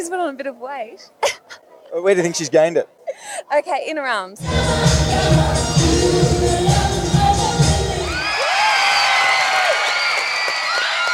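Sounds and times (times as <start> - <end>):
speech: 0.0 - 6.9
large crowd roaring and cheering: 7.3 - 11.1
crowd screaming and shrieking: 8.0 - 11.1.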